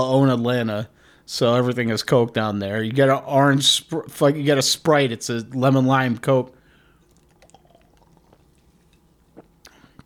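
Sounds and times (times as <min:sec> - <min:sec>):
speech: 0:00.0 - 0:06.6
low hum: 0:00.0 - 0:10.0
person sipping a beverage into a microphone: 0:06.8 - 0:10.0
sharp slurping clicks: 0:07.0 - 0:10.0.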